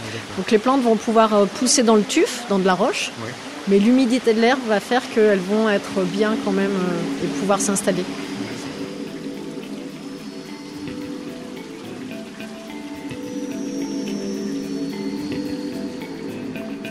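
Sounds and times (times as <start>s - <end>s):
waterfall cascading into overflow pools: 0.0s - 16.8s
speech: 0.2s - 8.4s.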